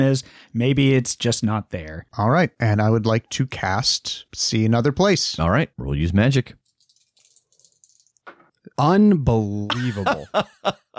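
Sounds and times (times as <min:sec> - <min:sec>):
speech: 0:00.0 - 0:06.6, 0:08.8 - 0:10.9
dice clattering and rattling: 0:06.7 - 0:08.4
laughter: 0:09.4 - 0:10.9.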